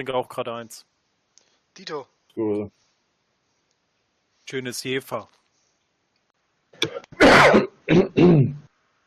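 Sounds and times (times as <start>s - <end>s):
speech: 0.0s - 0.9s, 1.8s - 2.8s, 4.5s - 5.4s, 6.8s - 8.6s
smoker's phlegmy cough: 6.8s - 8.6s.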